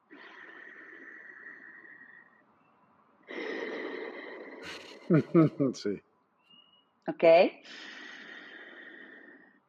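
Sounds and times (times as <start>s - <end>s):
Ujjayi pranayama breathing through the nose: 0.0s - 5.6s, 7.6s - 9.6s
laughter: 4.7s - 6.0s
speech: 5.1s - 6.1s, 7.1s - 7.9s.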